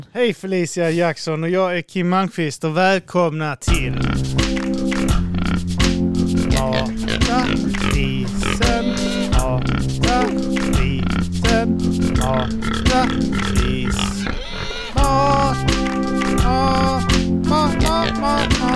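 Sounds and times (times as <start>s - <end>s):
speech: 0.1s - 4.4s
voice imitating pig grunting and oinking: 3.7s - 4.3s, 5.3s - 5.7s, 6.4s - 15.7s, 16.4s - 18.7s
steady tonal backing: 3.7s - 18.7s.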